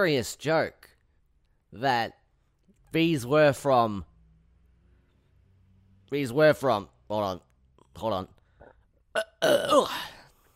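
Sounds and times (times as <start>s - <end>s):
speech: 0.0s - 0.9s, 1.7s - 2.2s, 2.9s - 4.1s, 6.1s - 8.4s, 9.2s - 10.1s
burp: 8.6s - 10.3s.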